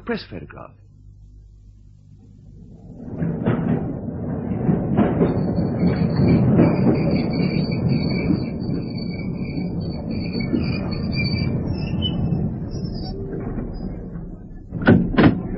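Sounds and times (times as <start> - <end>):
underground train rumbling at a station: 0.0 - 15.5
speech: 0.1 - 0.8
underground train doors sliding and clunking: 1.1 - 15.5
thin high-pitched squeal: 2.4 - 14.8.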